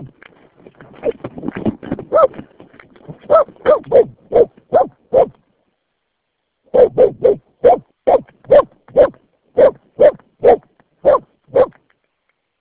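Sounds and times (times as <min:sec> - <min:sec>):
dog barking: 0:02.1 - 0:02.4, 0:03.3 - 0:05.4, 0:06.7 - 0:11.8.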